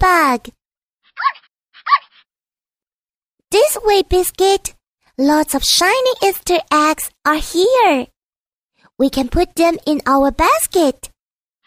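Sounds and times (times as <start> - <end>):
speech: 0.3 - 0.6, 3.5 - 8.1, 9.0 - 11.1
puppy barking in a grassy garden: 1.2 - 2.2.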